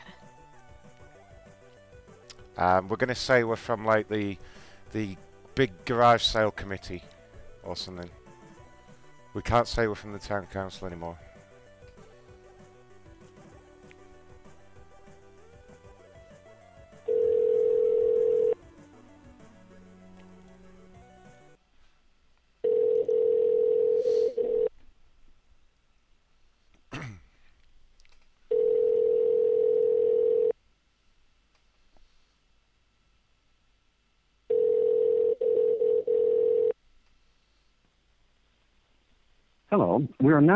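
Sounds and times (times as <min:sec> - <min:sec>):
speech: 0:02.6 - 0:08.2, 0:09.3 - 0:11.3, 0:40.3 - 0:40.5
dialing tones: 0:17.1 - 0:18.6, 0:22.7 - 0:24.7, 0:28.5 - 0:30.5, 0:34.5 - 0:36.7.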